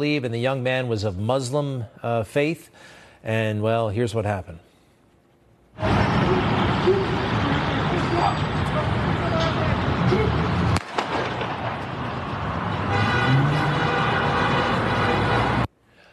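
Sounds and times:
speech: 0:00.0 - 0:04.7
voices: 0:05.8 - 0:10.5
loud steady roar of traffic: 0:05.8 - 0:15.7.

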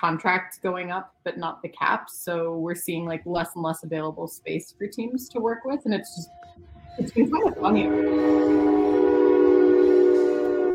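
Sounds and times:
speech: 0:00.0 - 0:09.2
train horn blast: 0:07.0 - 0:10.7.

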